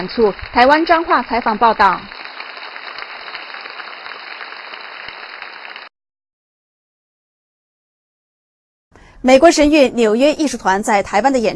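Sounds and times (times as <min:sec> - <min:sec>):
speech: 0:00.0 - 0:02.1, 0:09.2 - 0:11.5
full audience applauding in a performing arts hall after a dance premiere: 0:00.0 - 0:05.9.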